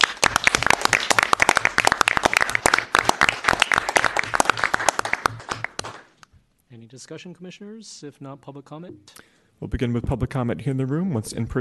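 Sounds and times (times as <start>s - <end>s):
room full of people applauding: 0.0s - 6.2s
speech: 7.0s - 11.5s.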